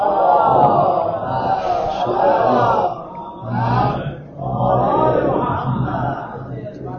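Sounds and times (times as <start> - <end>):
large audience reciting the salawat blessing in unison: 0.0 - 6.9.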